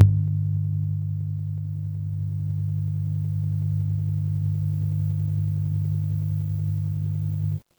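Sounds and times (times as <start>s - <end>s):
electric hum: 0.0s - 7.6s.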